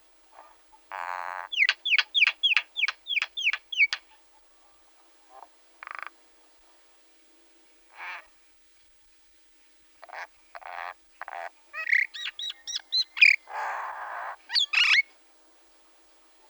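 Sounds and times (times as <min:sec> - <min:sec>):
common myna calling with harsh grating notes and squawks: 0:00.9 - 0:04.0, 0:11.2 - 0:15.0.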